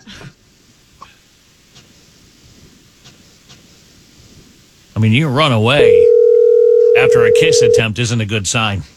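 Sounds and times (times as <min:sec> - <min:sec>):
speech: 0:05.0 - 0:06.2, 0:07.0 - 0:08.9
phone keypad tone: 0:05.8 - 0:07.8.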